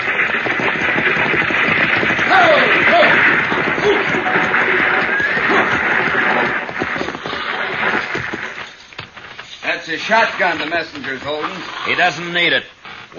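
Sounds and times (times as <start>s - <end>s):
six-horse team hooves clip-clopping pulling a stagecoach: 0.0s - 12.0s
speech: 10.0s - 13.1s.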